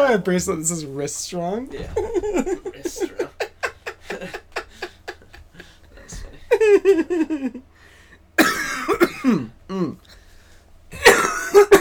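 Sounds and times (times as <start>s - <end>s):
speech: 0.1s - 3.4s, 6.8s - 7.7s
laughter: 1.7s - 7.7s
person coughing: 8.4s - 10.0s, 10.9s - 11.7s.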